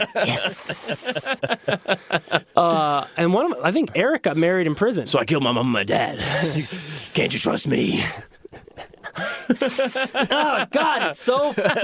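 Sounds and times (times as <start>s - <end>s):
speech: 0.0s - 2.0s, 2.6s - 8.4s, 9.2s - 11.8s
laughter: 0.0s - 3.0s, 8.5s - 11.8s
voice imitating a hissing snake: 0.2s - 1.4s, 6.2s - 7.4s, 9.6s - 10.4s.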